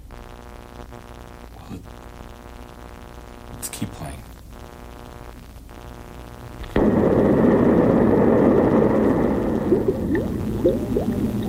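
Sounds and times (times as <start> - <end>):
speech: 1.7 - 2.1
dense steady bubbling and gurgling: 6.6 - 11.4
sudden loud explosion blast: 6.6 - 11.4.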